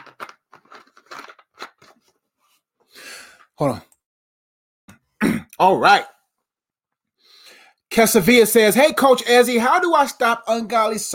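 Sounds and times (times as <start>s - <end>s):
thin plastic bottle crinkling while someone drinks: 0.0s - 2.2s
speech: 3.6s - 3.9s, 5.6s - 6.1s, 8.0s - 11.1s.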